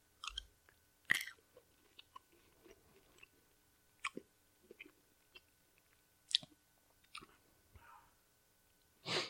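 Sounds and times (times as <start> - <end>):
crunching and chewing a hot pepper: 0.2 - 3.4, 4.0 - 7.4.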